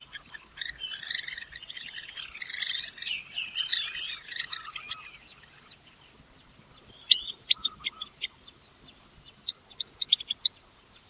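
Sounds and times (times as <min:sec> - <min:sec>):
Java sparrow courtship or conflict calls: 0:00.0 - 0:11.0.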